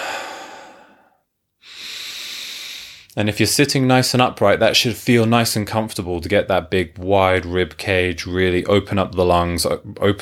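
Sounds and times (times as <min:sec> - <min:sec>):
big deep breaths through the mouth: 0:00.0 - 0:03.2
speech: 0:03.2 - 0:10.2.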